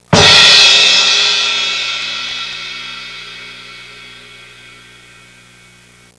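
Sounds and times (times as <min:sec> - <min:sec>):
percussion instruments: 0:00.0 - 0:05.7
cymbal crash: 0:00.0 - 0:06.0.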